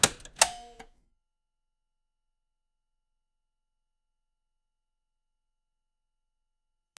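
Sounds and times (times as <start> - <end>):
old television turning on: 0.4 - 6.9.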